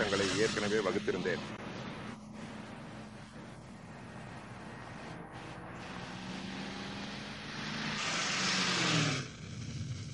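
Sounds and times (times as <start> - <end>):
speech: 0.0 - 1.6
car speeding past: 4.6 - 9.3.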